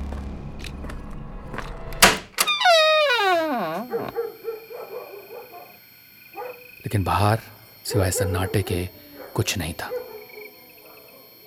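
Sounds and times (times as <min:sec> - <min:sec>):
door creaking open with a high-pitched creak: 0:01.6 - 0:04.4
speech: 0:06.9 - 0:10.0.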